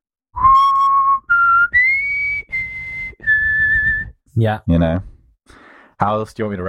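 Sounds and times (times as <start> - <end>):
person whistling a short musical theme: 0.4 - 4.2
speech: 4.4 - 6.6.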